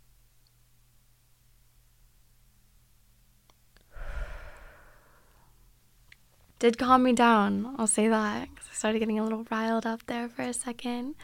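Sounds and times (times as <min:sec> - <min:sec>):
deep breathy inhale during a breathing exercise: 0:03.9 - 0:05.5
speech: 0:06.6 - 0:11.2.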